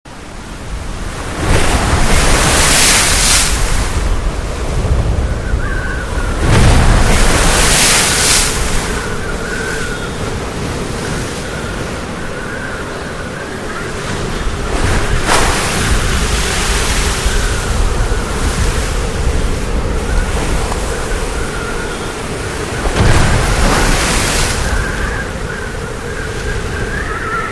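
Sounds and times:
heavy surf in a sea storm: 0:00.1 - 0:27.5
screaming wind in a sea storm: 0:00.8 - 0:27.5.

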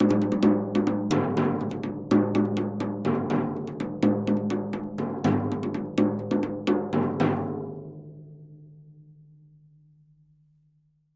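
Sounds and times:
thin tom drum rhythm: 0:00.0 - 0:07.9.

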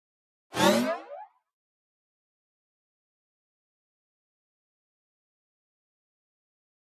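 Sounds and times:
pop-up electric element bouncing: 0:00.6 - 0:01.3.

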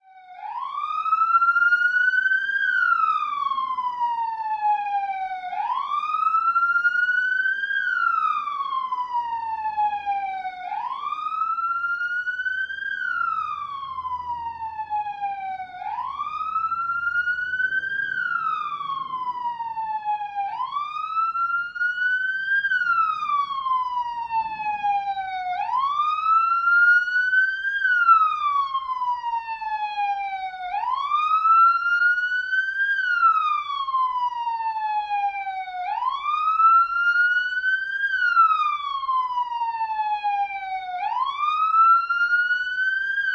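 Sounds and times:
police siren of various types from an idling car: 0:00.0 - 0:43.3.

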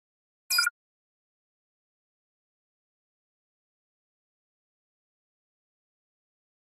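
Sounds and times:
electronic flash double beep: 0:00.5 - 0:00.7.

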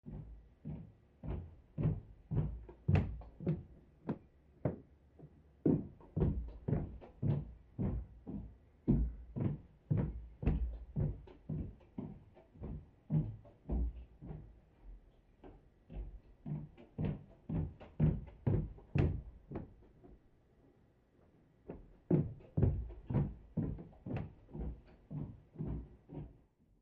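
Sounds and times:
female footsteps walking on stairs: 0:00.0 - 0:20.3, 0:21.2 - 0:26.4.

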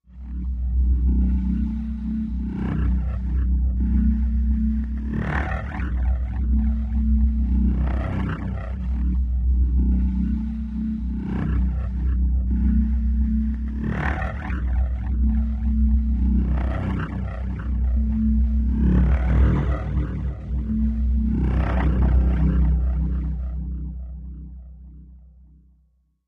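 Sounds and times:
low pulsing machine echo: 0:00.0 - 0:25.6.

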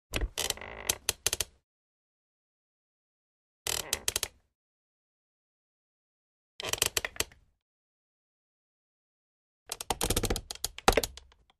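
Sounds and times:
office chair creaking: 0:00.2 - 0:01.5, 0:03.7 - 0:04.3, 0:09.8 - 0:11.2.

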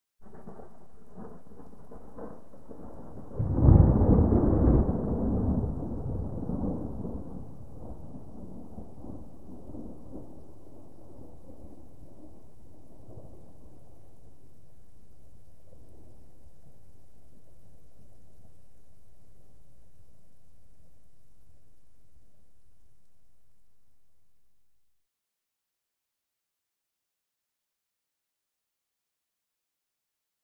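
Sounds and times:
distant thunder: 0:00.2 - 0:18.7.

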